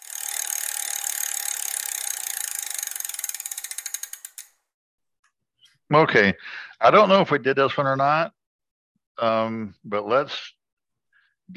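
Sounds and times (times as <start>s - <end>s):
ratcheting prize wheel spinning: 0.0s - 4.6s
speech: 5.9s - 8.4s, 9.2s - 10.6s.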